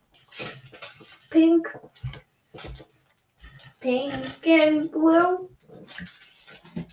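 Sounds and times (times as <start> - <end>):
speech: 1.3 - 2.1, 3.8 - 6.1
utensil clinking and scraping against a pot while stew is stirred: 3.4 - 5.0.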